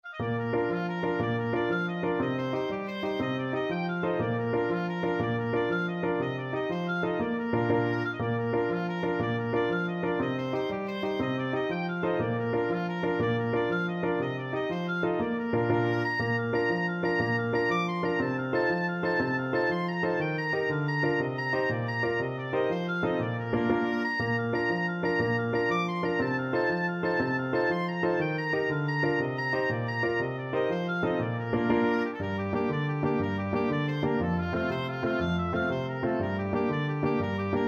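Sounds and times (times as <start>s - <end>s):
oboe playing an Irish jig medley: 0.0s - 37.6s.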